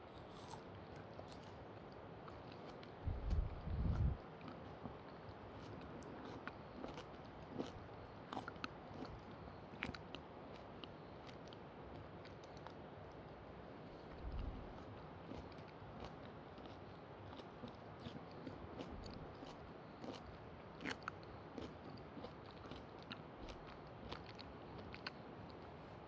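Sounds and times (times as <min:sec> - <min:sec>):
biting and chewing juicy bite-sized food: 0:00.1 - 0:12.8, 0:14.0 - 0:26.0
crunchy bites of juicy food: 0:00.2 - 0:01.6, 0:05.6 - 0:09.2, 0:15.3 - 0:25.2.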